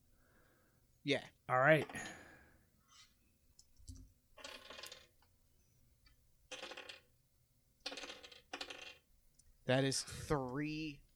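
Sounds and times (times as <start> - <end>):
speech: 1.0 - 2.2, 9.7 - 11.0
handful of dice rattling across a hard surface: 4.4 - 5.1, 6.5 - 7.1, 7.8 - 9.0.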